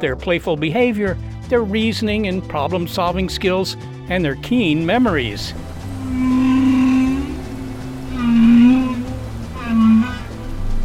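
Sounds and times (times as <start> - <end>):
speech: 0.0 - 5.7
steady watery hiss: 4.7 - 10.8
whale vocalizations: 5.6 - 10.8.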